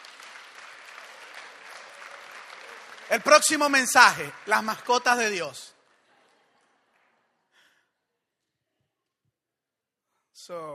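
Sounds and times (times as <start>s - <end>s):
congregation applauding: 0.0s - 7.6s
speech: 3.1s - 5.8s, 10.5s - 10.7s.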